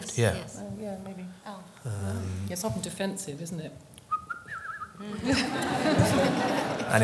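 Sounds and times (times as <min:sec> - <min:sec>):
speech: 0:00.2 - 0:03.9, 0:05.0 - 0:07.0
breathy noisy vocal sound: 0:01.8 - 0:02.6
person whistling a short wavering angry tune: 0:04.1 - 0:05.4
laughter: 0:05.0 - 0:07.0.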